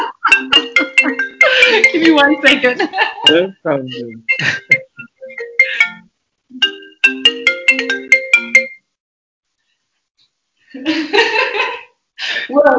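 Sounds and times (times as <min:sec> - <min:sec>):
laughter: 0:00.0 - 0:05.0, 0:10.8 - 0:11.9
phone ringtone of bright bell-like electronic tones: 0:00.2 - 0:08.8
voice sounds: 0:01.4 - 0:05.9
speech: 0:01.8 - 0:04.8.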